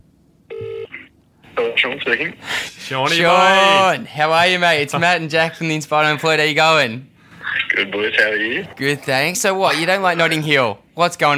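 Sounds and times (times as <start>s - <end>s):
phone dialing tones as a call is placed: 0.5s - 1.0s
speech: 1.6s - 7.1s, 7.8s - 11.3s.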